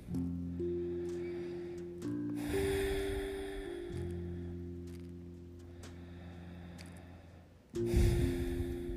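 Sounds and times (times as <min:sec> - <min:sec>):
sustained low humming drone tones: 0:00.0 - 0:08.9
slow deep breathing during seated meditation: 0:00.1 - 0:04.7, 0:05.6 - 0:08.9.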